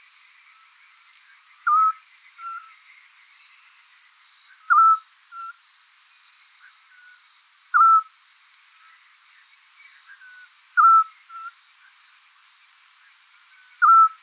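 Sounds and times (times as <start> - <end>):
Eurasian scops owl Otus scops whistled call: 7.8 - 8.0, 10.8 - 11.1, 13.8 - 14.2.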